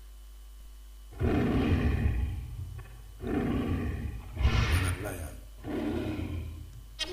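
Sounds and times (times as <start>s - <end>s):
lion roaring: 1.1s - 7.1s.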